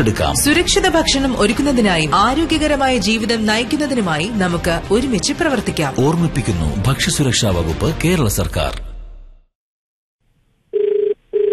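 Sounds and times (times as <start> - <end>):
speech: 0.0 - 8.9
telephone ringing for an outgoing radio phone-in call: 10.7 - 11.5.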